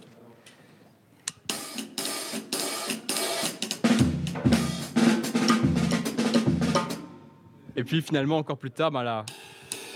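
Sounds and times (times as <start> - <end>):
hi-hat cymbal playing a steady crisp rhythm: 1.5 - 7.4, 9.3 - 9.9
speech: 7.8 - 9.4.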